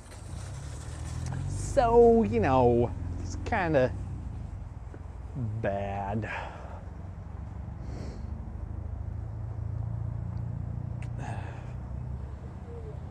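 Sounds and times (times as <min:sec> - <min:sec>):
car engine idling with a low continuous rumble: 0:00.0 - 0:13.0
speech: 0:01.8 - 0:04.0, 0:05.4 - 0:06.6
brief breathy sniffs or rustles: 0:07.8 - 0:08.4.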